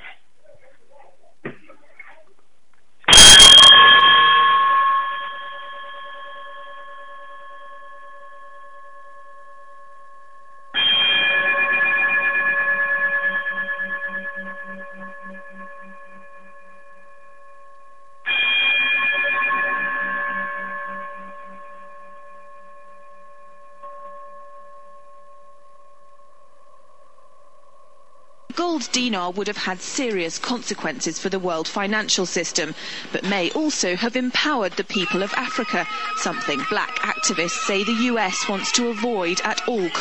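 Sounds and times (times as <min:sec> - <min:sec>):
closing chime struck: 0:03.1 - 0:28.3
speech: 0:28.8 - 0:39.9
laughter: 0:34.7 - 0:39.9.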